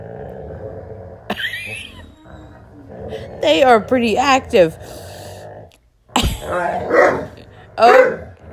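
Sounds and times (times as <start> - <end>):
rough sustained dog growling: 0.0 - 8.5
speech: 3.4 - 5.0, 6.5 - 7.0, 7.8 - 8.5
dog barking while playing with a tug toy: 6.9 - 8.2.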